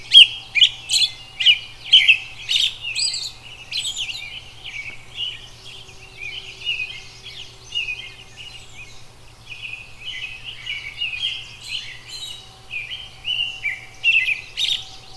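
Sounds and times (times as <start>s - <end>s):
robin giving rapid chirping phrases and warbling twitters: 0.0s - 4.6s, 10.8s - 15.1s.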